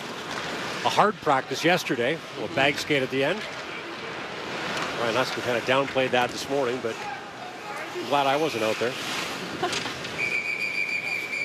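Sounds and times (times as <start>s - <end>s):
dense crowd and arena roar at an ice hockey game: 0.0s - 11.4s
speech: 0.8s - 3.6s, 5.0s - 7.1s, 8.0s - 10.0s
referee whistle blast at an ice hockey game: 10.2s - 11.4s.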